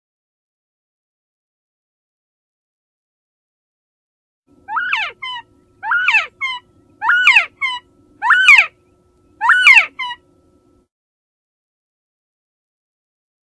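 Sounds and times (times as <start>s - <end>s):
faint low hum: 4.5s - 10.9s
Northern Bobwhite calling: 4.7s - 8.8s, 9.4s - 10.2s.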